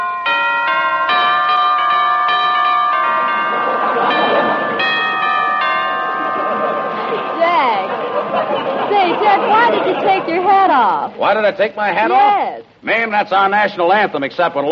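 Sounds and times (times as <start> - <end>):
doorbell chiming a multi-note melody: 0.0 - 8.8
laughter: 3.1 - 11.2
speech: 10.7 - 14.7.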